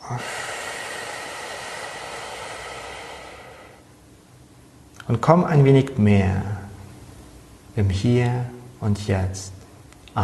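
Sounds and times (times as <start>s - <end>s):
deep breath in and out during a guided meditation: 0.0s - 4.0s
speech: 0.1s - 0.5s, 5.1s - 6.6s, 7.8s - 9.6s.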